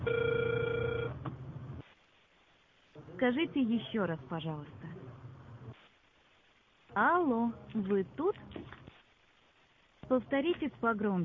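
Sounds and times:
telephone ringing tone during a call attempt: 0:00.0 - 0:01.2
speech: 0:03.2 - 0:04.8, 0:07.0 - 0:08.8, 0:10.1 - 0:11.2.

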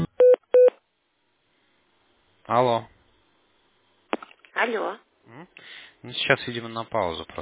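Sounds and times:
telephone keypad touch-tone beeps dialing in tone mode: 0:00.2 - 0:00.7
speech: 0:02.5 - 0:02.9, 0:04.6 - 0:07.3.

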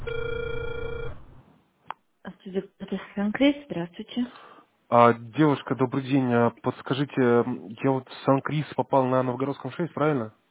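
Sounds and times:
telephone ringback tone: 0:00.0 - 0:01.3
speech: 0:02.5 - 0:10.4.

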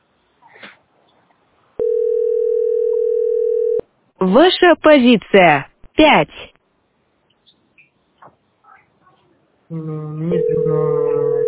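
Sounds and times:
telephone line tone while calling a hotline queue: 0:01.8 - 0:03.8, 0:10.3 - 0:11.4
speech: 0:04.2 - 0:06.5, 0:09.7 - 0:11.2.

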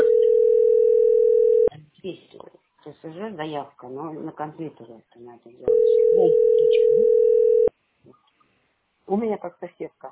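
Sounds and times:
telephone ringing tone during an outgoing call: 0:00.0 - 0:01.7, 0:05.7 - 0:07.7
speech: 0:03.0 - 0:08.2, 0:09.1 - 0:10.1.

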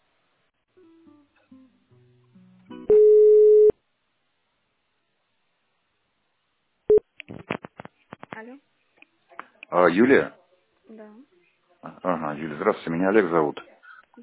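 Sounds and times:
steady buzzy telephone line tone while a call is transferred: 0:02.8 - 0:03.8
short telephone line beep: 0:02.9 - 0:03.7
speech: 0:08.4 - 0:08.8, 0:09.7 - 0:14.2.

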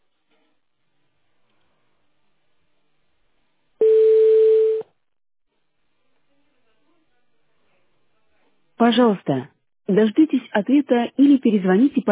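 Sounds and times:
telephone busy signal beeps: 0:03.8 - 0:04.8
speech: 0:08.9 - 0:12.1.

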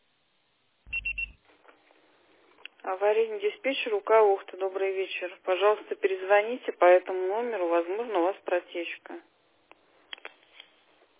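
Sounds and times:
voicemail signal tone beeps on a phone line: 0:00.9 - 0:01.4
speech: 0:02.8 - 0:09.3.

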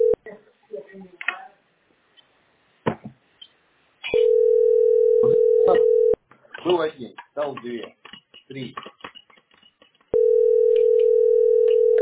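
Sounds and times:
telephone line tone while placing a call: 0:04.1 - 0:06.2, 0:10.2 - 0:11.9
speech: 0:06.8 - 0:08.0.

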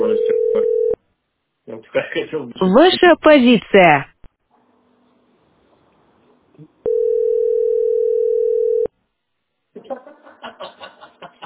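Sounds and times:
telephone dial tone of an outgoing call: 0:00.2 - 0:01.0, 0:06.9 - 0:08.9
speech: 0:02.3 - 0:04.1
laughter: 0:09.8 - 0:11.4.

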